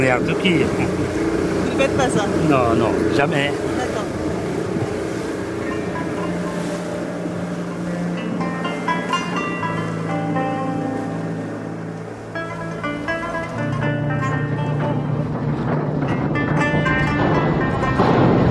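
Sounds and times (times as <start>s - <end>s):
speech: 0.0s - 3.8s
gusting wind: 0.0s - 18.5s
harbor activity: 0.0s - 18.5s
large ship's engine droning low: 0.0s - 18.5s
rushing waves: 0.0s - 18.5s.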